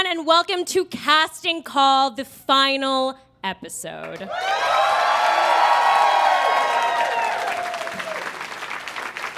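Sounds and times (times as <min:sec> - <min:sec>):
speech: 0:00.1 - 0:05.0
large crowd cheering with whoops and shouts: 0:04.3 - 0:08.6
large crowd applauding: 0:04.3 - 0:09.3.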